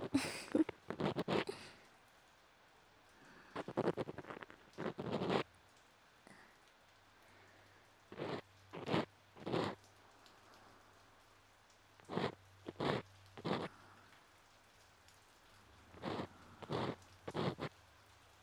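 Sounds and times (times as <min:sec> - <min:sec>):
crackling bursts: 0:00.0 - 0:01.7, 0:03.3 - 0:05.6, 0:08.1 - 0:13.9, 0:15.4 - 0:18.0
rain falling: 0:00.0 - 0:18.4.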